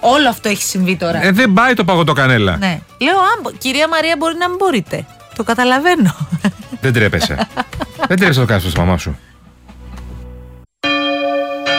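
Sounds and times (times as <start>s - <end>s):
speech: 0.0s - 9.3s
laughter: 6.0s - 8.7s
church bells ringing: 10.8s - 11.7s.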